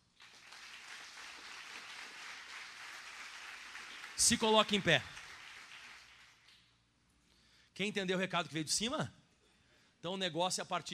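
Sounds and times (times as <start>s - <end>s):
crowd applauding with many hands clapping: 0.0s - 6.6s
speech: 4.2s - 5.2s, 7.8s - 9.2s, 10.0s - 10.9s.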